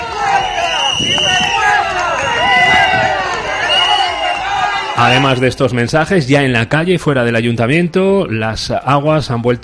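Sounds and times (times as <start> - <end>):
crowd booing and shouting insults: 0.0 - 5.8
speech: 5.0 - 9.6.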